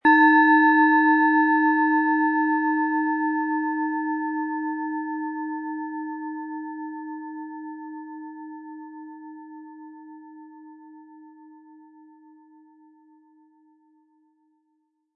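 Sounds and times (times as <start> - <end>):
Eros planetary singing bowl 11 cm struck with mallet: 0.0 - 7.2.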